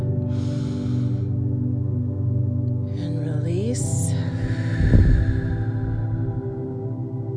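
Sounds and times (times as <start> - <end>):
steady low humming drone: 0.0 - 7.3
deep breath in: 0.3 - 1.4, 4.3 - 6.6.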